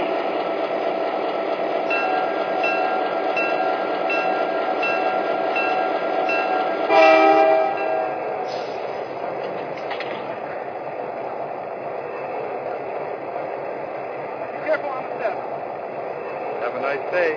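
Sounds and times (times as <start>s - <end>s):
passenger train rumbling into a station: 0.0s - 17.3s
faint train squeals: 1.9s - 9.9s.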